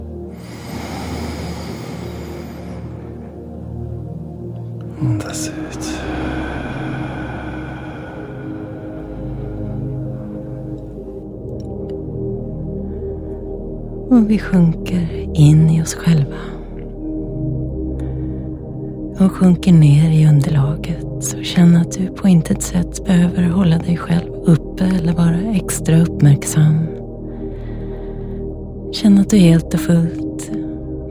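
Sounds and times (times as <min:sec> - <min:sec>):
deep breath before a meditation: 0:00.0 - 0:14.1, 0:16.3 - 0:19.2, 0:27.0 - 0:28.9
soft sustained music: 0:00.0 - 0:31.0
speech: 0:14.2 - 0:16.6, 0:19.2 - 0:27.0, 0:29.0 - 0:30.6.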